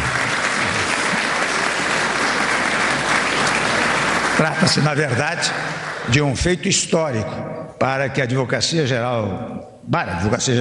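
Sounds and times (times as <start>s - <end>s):
audience applause: 0.0s - 6.2s
speech: 4.6s - 10.5s.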